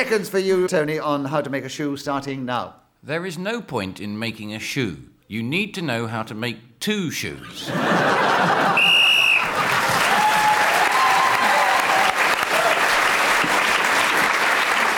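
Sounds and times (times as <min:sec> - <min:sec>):
speech: 0:00.0 - 0:08.9
laughter: 0:07.4 - 0:10.7
loud dense audience applause: 0:08.2 - 0:14.9
short shrill referee's whistle blast: 0:08.8 - 0:09.5.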